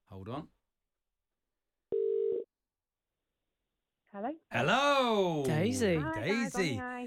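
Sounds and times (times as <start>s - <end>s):
speech: 0.2s - 0.6s, 4.2s - 7.0s
electronic ringback tone on an outgoing phone call: 1.9s - 2.4s.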